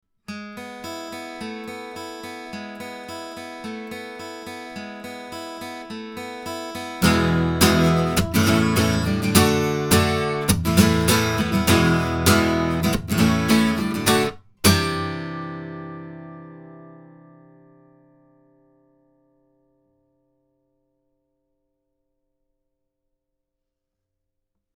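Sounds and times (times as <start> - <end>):
Gibson Flamingo Jr guitar: 7.0 - 14.4.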